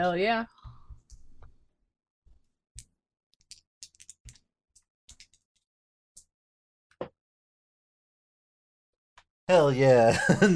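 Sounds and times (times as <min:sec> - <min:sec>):
speech: 0:00.0 - 0:00.6, 0:09.5 - 0:10.5
dice rolling and clattering across a hard surface: 0:02.8 - 0:05.6.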